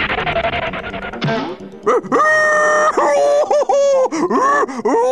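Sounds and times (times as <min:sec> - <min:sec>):
rushing burst of noise: 0:00.0 - 0:01.2
wolf howling in pain and fury after running into a tree: 0:01.9 - 0:03.9
laughter: 0:01.9 - 0:05.0.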